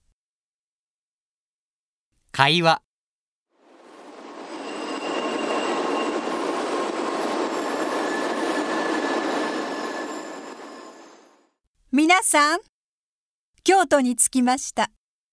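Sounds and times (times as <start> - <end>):
speech: 2.4 - 2.8, 11.9 - 12.7, 13.6 - 15.0
bullet train running: 3.6 - 11.4
high squealing tones: 3.7 - 11.4.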